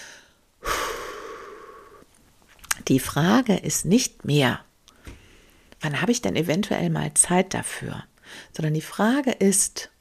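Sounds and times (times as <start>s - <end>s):
slow deep breath with breathy exhale: 0.0s - 2.1s, 4.9s - 5.7s, 8.2s - 8.5s
speech: 2.9s - 4.7s, 5.8s - 9.9s.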